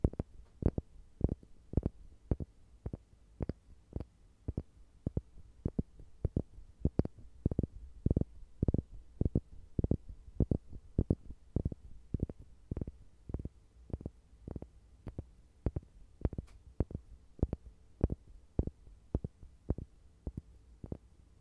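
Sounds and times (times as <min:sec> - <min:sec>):
light tapping knocks: 0:00.0 - 0:21.0.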